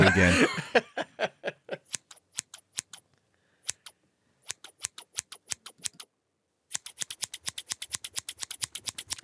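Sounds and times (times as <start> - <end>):
speech: 0.0 - 0.8
laughter: 0.0 - 1.9
scissors snipping: 1.9 - 3.0, 3.7 - 6.1, 6.7 - 9.2.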